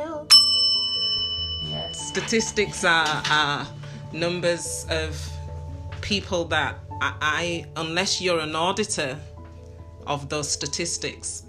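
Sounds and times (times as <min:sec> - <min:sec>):
bell being struck: 0:00.3 - 0:03.9
speech: 0:02.1 - 0:05.4, 0:06.1 - 0:09.3, 0:10.1 - 0:11.4.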